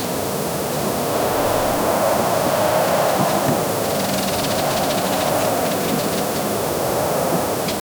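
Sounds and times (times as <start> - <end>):
harsh wind gusts in dry reeds: 0.0 - 7.8
insects: 0.0 - 7.8.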